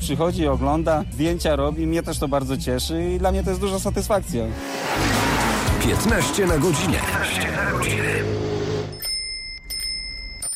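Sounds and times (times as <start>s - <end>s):
speech: 0.0s - 5.2s, 5.8s - 8.4s
bicycle bell ringing: 8.9s - 10.5s.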